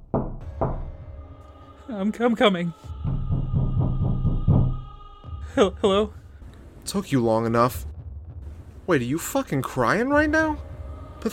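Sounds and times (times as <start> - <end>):
heavy knocks on a door: 0.0 - 1.0, 3.1 - 4.8
speech: 1.9 - 2.9, 5.6 - 6.2, 6.9 - 7.9, 8.9 - 11.3.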